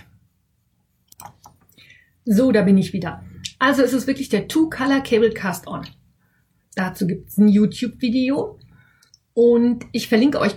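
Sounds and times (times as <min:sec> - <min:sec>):
faint room hiss: 0:00.0 - 0:10.5
computer mouse clicks: 0:01.0 - 0:01.8
speech: 0:02.2 - 0:06.0, 0:06.8 - 0:08.6, 0:09.4 - 0:10.5.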